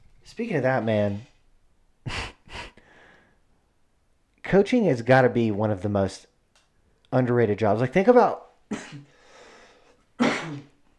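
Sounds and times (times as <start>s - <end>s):
speech: 0.3s - 1.3s, 4.5s - 6.3s, 7.1s - 9.1s
faint raspy breath: 2.1s - 3.4s, 9.1s - 10.0s
person coughing after smoking cannabis: 8.7s - 9.1s, 10.2s - 10.8s.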